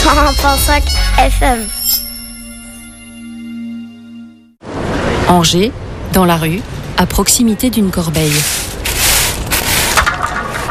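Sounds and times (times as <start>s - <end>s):
speech: 0.1s - 1.8s, 5.3s - 8.7s
steady wash of outdoor street noise: 4.6s - 10.7s
drink can dropped on hard pavement on a street in Angers France: 8.4s - 10.7s.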